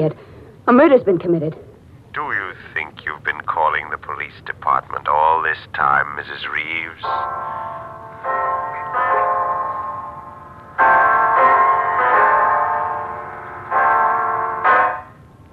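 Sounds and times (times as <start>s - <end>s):
speech: 0.0s - 2.8s, 4.4s - 8.4s
clock chiming the hour with bell strikes: 6.6s - 15.1s.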